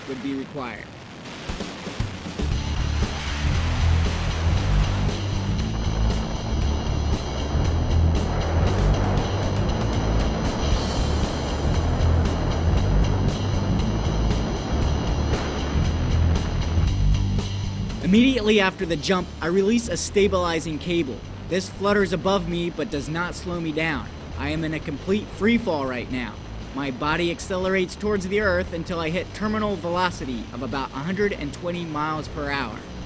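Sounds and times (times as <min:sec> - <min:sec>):
speech: 0:00.1 - 0:01.0, 0:18.1 - 0:32.9
small propeller plane engine drone inside the cabin in flight at 13,500 feet: 0:02.5 - 0:33.0.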